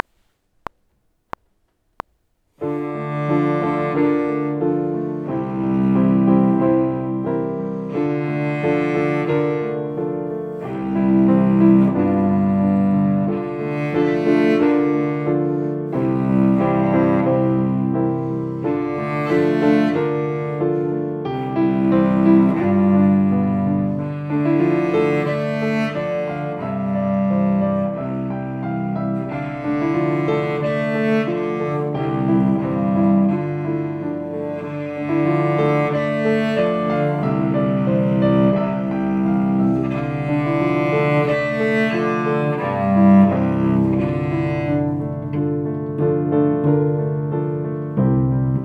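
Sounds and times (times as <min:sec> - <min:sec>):
cello: 0:02.6 - 0:48.6
piano: 0:02.6 - 0:48.6.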